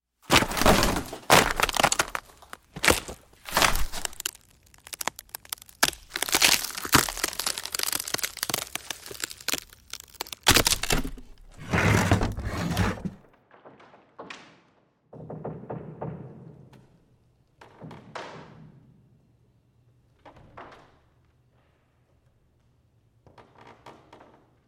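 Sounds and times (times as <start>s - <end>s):
wood creaking: 0.3s - 13.2s.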